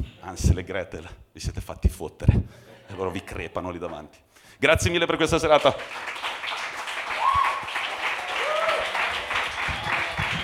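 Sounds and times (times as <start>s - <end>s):
speech: 0.0s - 6.3s
audience applause at a comedy night: 5.5s - 10.4s.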